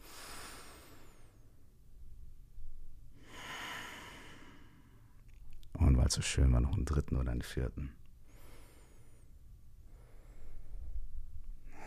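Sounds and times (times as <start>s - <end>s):
deep breath in and out: 0.0s - 1.7s, 3.1s - 5.2s, 8.2s - 11.8s
speech: 6.1s - 8.0s.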